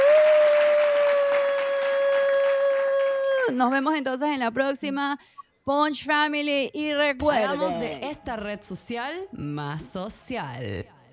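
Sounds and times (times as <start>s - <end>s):
group clapping: 0.0s - 3.8s
speech: 3.5s - 10.9s.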